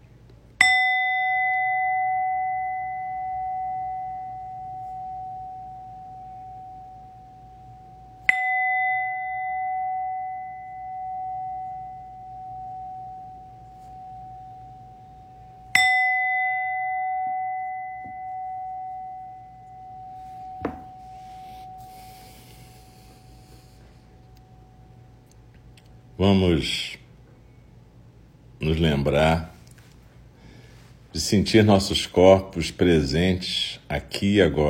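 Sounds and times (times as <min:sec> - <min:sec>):
zazen meditation bell struck and ringing: 0:00.6 - 0:25.4
speech: 0:26.2 - 0:27.0, 0:28.6 - 0:29.5, 0:31.2 - 0:34.6.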